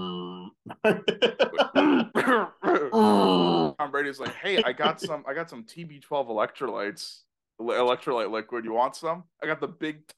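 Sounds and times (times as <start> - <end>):
laughter: 0.8 - 2.0, 4.3 - 5.1
speech: 0.8 - 2.6, 4.1 - 10.1
voice imitating a man holding in a cough: 1.6 - 3.0.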